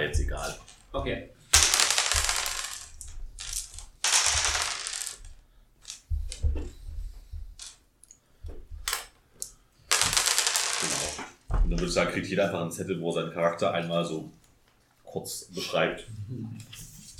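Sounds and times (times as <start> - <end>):
speech: 0.1 - 1.3, 11.7 - 14.4, 15.1 - 16.8
dice clattering and scraping across a tabletop: 1.5 - 6.4, 7.6 - 7.8, 9.9 - 11.4.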